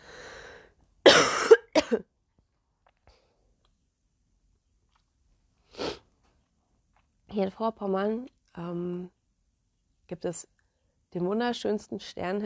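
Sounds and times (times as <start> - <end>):
person coughing: 1.1 - 2.1
speech: 1.9 - 2.1, 7.4 - 9.2, 10.1 - 12.4.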